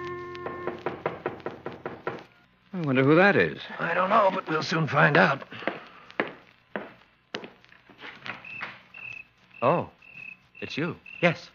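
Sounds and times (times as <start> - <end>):
knocking on a wooden cabin door: 0.5 - 2.2
speech: 2.8 - 5.7, 9.6 - 10.0, 10.6 - 11.5.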